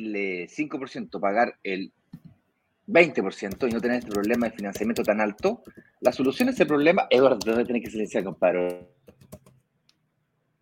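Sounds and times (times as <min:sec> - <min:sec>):
speech: 0:00.0 - 0:02.0, 0:02.9 - 0:09.3
typing on a computer keyboard: 0:03.5 - 0:09.6.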